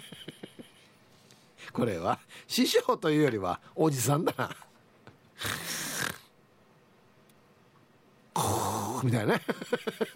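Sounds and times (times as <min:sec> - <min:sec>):
speech: 0:01.8 - 0:04.7, 0:09.0 - 0:10.1
person imitating apnea-like snoring of a five-year-old at nap time: 0:05.4 - 0:06.3, 0:08.4 - 0:09.0.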